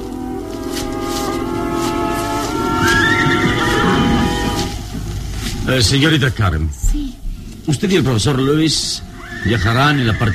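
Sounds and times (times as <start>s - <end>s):
steady low rumble: 0.0s - 9.1s
team of horses hitched to a rustic cart whinnying: 2.6s - 5.2s, 9.0s - 10.3s
speech: 5.7s - 10.3s.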